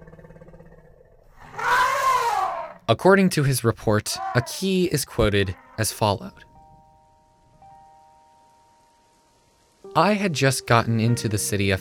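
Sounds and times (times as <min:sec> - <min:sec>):
elephant honk: 0:01.4 - 0:02.8, 0:04.1 - 0:04.7
speech: 0:02.9 - 0:06.5, 0:10.0 - 0:11.8.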